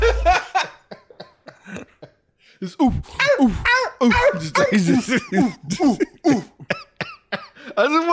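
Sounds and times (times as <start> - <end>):
laughter: 0.0 - 2.2, 4.1 - 7.7
speech: 2.6 - 6.4, 7.8 - 8.1
woman imitating big and tiny dog barking: 3.2 - 5.0.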